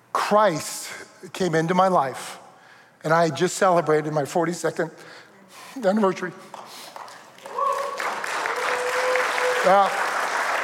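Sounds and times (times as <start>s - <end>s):
speech: 0.3s - 2.4s, 3.0s - 5.2s, 5.8s - 6.6s, 9.6s - 10.0s
crowd applauding: 6.9s - 10.6s
people whooping: 7.4s - 10.3s.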